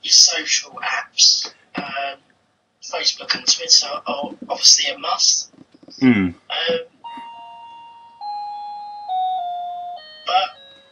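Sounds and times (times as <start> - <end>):
speech: 0.0 - 1.3, 3.7 - 6.9
electronic doorbell chiming three tones: 7.0 - 10.9.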